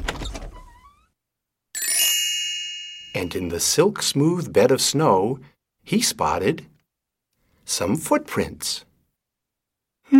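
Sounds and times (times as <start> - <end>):
door being opened with a rough creaking grind: 0.0 - 1.2
speech: 3.2 - 6.7, 7.7 - 8.9.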